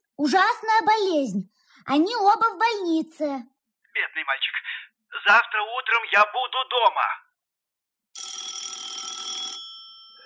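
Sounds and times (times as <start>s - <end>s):
speech: 0.2s - 7.2s
telephone bell ringing: 8.2s - 10.2s.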